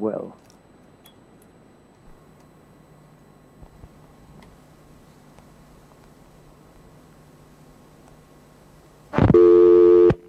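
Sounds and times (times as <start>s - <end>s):
speech: 0.0s - 0.5s
telephone ringing tone: 9.3s - 10.2s.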